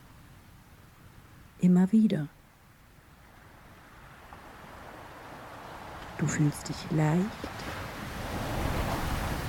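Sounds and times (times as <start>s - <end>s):
speech: 1.6s - 2.4s, 6.2s - 7.7s
ocean surf washing onto the shore: 3.3s - 9.4s.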